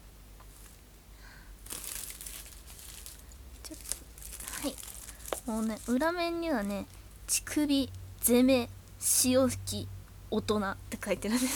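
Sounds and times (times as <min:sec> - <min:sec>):
plastic-wrapped package tearing and crackling: 0:01.6 - 0:07.0
plastic-wrapped package crinkling and rustling: 0:01.6 - 0:07.6
speech: 0:05.5 - 0:11.5.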